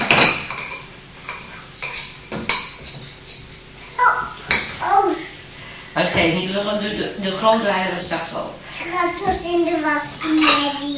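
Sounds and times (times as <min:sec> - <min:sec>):
spoon clinking while stirring in a pot: 0:00.0 - 0:04.6
dishes and cutlery knocking together: 0:00.0 - 0:04.8, 0:10.4 - 0:10.8
speech: 0:06.2 - 0:10.9.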